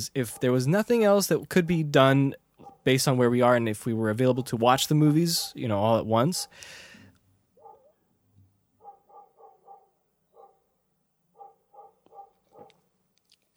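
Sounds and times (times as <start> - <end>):
speech: 0.0 - 6.9
dog barking in quick bursts: 0.3 - 0.6, 2.6 - 2.9, 4.3 - 4.6, 7.6 - 8.1, 8.8 - 12.8.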